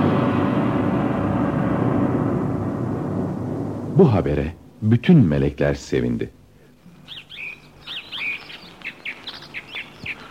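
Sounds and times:
faint hiss: 0.0s - 10.2s
speech: 4.0s - 6.4s
birds chirping in bright high tweets: 5.8s - 10.2s.

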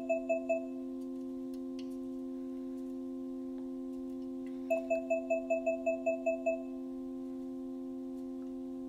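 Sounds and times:
steady tonal hum: 0.0s - 8.8s
smart display beeping while scanning item: 4.7s - 6.8s.

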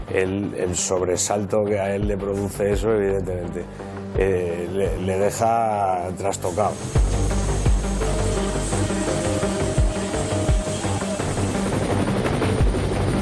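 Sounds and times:
speech: 0.1s - 7.4s
helicopter rotor throbbing overhead: 6.7s - 13.2s.

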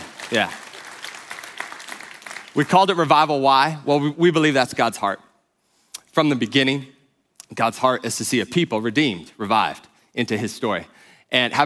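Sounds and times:
audience applause: 0.0s - 2.8s
speech: 0.3s - 0.6s, 2.6s - 5.2s, 6.1s - 11.6s.

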